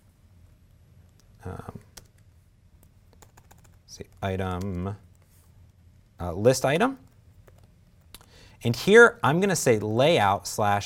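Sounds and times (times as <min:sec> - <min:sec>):
speech: 0:01.4 - 0:01.8, 0:04.0 - 0:05.1, 0:06.2 - 0:07.0, 0:08.6 - 0:10.8
typing on a computer keyboard: 0:01.9 - 0:04.8, 0:07.4 - 0:08.1.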